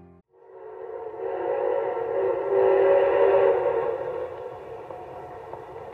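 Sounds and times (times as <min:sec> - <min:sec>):
train whistle while pulling into a station: 0:00.4 - 0:04.5
train rumbling while pulling into a station: 0:00.5 - 0:05.9.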